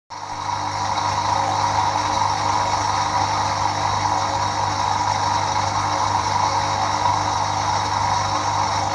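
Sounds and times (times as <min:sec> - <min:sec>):
faulty Bosch dishwasher pump noise: 0:00.2 - 0:08.9.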